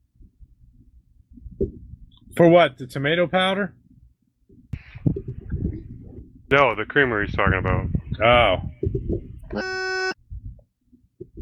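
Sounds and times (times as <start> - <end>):
low thumps: 0.1 - 2.3, 3.9 - 11.3
speech: 2.4 - 3.8, 6.5 - 9.9
electronic beep from a microphone: 9.5 - 10.2.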